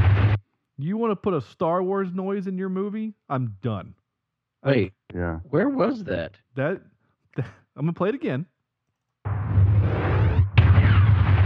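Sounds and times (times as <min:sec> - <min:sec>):
car gas tank shot and exploding in a zombie film scene: 0:00.0 - 0:00.4, 0:09.3 - 0:11.4
speech: 0:00.8 - 0:04.0, 0:04.6 - 0:08.5.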